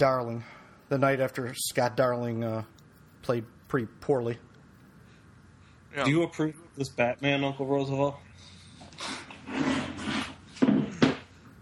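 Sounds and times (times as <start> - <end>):
speech: 0.0 - 4.5, 5.9 - 9.7
wooden chair scraping and shuffling: 9.0 - 11.3.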